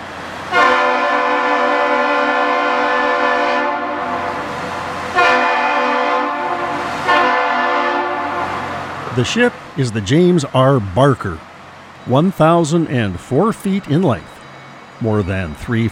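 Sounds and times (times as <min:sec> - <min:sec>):
chord-like locomotive air horns blaring on a bridge: 0:00.5 - 0:08.9
speech: 0:09.2 - 0:14.3, 0:15.0 - 0:15.9.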